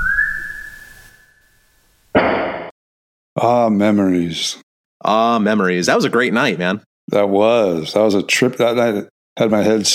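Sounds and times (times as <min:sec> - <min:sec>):
steady high whistle: 0:00.0 - 0:01.8
loud harsh knock or bang: 0:02.2 - 0:02.8
speech: 0:03.4 - 0:09.9.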